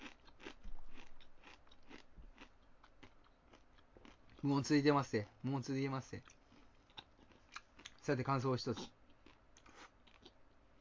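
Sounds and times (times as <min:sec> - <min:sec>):
person biting and chewing crunchy food: 0:00.0 - 0:05.3, 0:06.1 - 0:10.7
speech: 0:04.4 - 0:06.4, 0:08.0 - 0:09.0.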